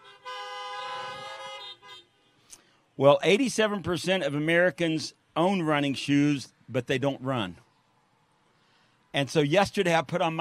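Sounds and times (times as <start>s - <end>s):
car horns honking: 0.0s - 2.5s
speech: 3.0s - 7.6s, 9.2s - 10.3s.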